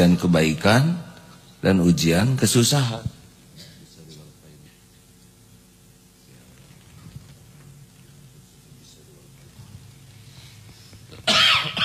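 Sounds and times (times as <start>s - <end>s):
speech: 0.0s - 1.0s, 1.6s - 3.2s
low steady noise: 0.0s - 11.8s
loud harsh cough: 11.2s - 11.8s.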